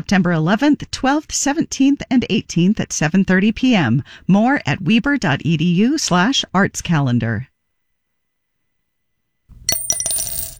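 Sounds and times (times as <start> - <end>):
speech: 0.0 - 7.5
quarter coin dropping into a jar: 9.5 - 10.5.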